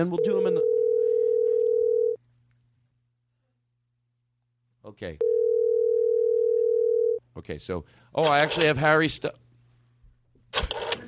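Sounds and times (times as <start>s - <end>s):
speech: 0.0s - 0.7s, 4.9s - 5.3s, 7.4s - 9.4s
telephone dial tone: 0.3s - 2.2s, 5.2s - 7.2s.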